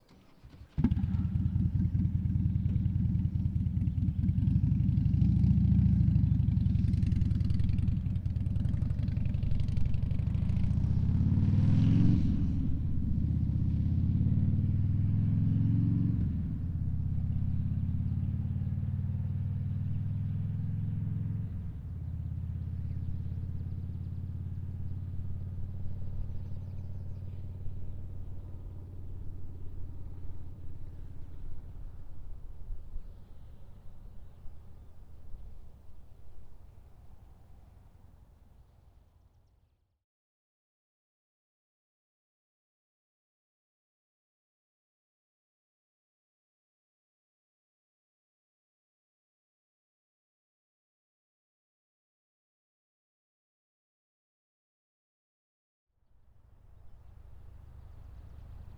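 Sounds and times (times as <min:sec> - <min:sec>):
distant 2004 Harley Davidson Night Train motorcycle starting and pulling away on ramps: 0:00.0 - 0:39.6, 0:56.4 - 0:58.7.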